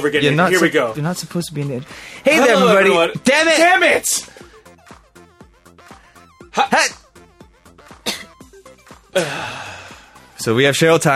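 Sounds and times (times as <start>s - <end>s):
speech: 0.0s - 4.4s, 6.6s - 7.0s, 9.2s - 9.7s, 10.4s - 11.1s
woman coughing with harsh bursts: 8.0s - 8.4s.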